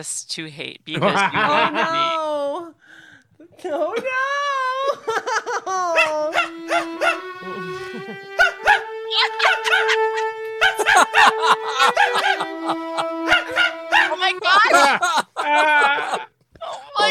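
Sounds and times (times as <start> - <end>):
speech: 0.0 - 2.8, 3.4 - 4.4, 11.0 - 13.2
laughter: 0.9 - 2.3, 3.8 - 17.0
small yappy dog barking and yelping: 6.0 - 7.3, 8.4 - 12.5, 13.3 - 14.7.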